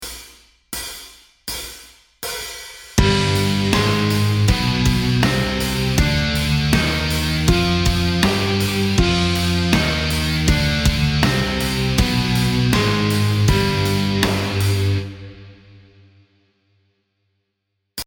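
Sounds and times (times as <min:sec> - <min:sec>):
musical scale in G Phrygian dominant mode: 0:03.0 - 0:15.4.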